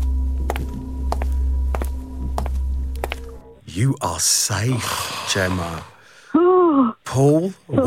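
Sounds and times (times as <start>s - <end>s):
constant low electrical hum: 0.0s - 4.6s
footsteps of players stepping forward: 0.4s - 3.5s
speech: 3.8s - 7.8s.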